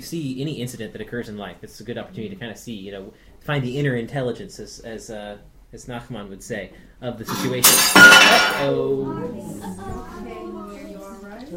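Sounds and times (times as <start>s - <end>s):
speech: 0.0s - 10.4s
broken glass shards clinking: 7.3s - 8.7s.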